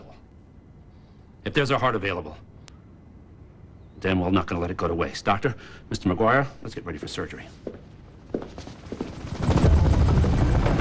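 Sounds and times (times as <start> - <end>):
speech: 1.4 - 2.5, 4.0 - 7.9
rescue helicopter flying low overhead: 8.6 - 10.8.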